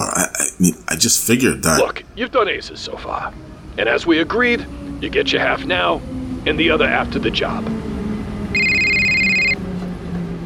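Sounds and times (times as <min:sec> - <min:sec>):
speech: 0:00.2 - 0:07.9
cell phone ringing: 0:08.5 - 0:09.6.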